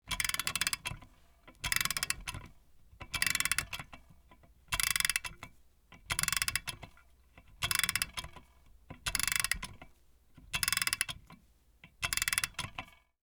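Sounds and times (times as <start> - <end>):
wall clock gear ticking: 0.1 - 5.4, 6.0 - 6.8, 7.5 - 9.8, 10.6 - 11.2, 12.0 - 12.9.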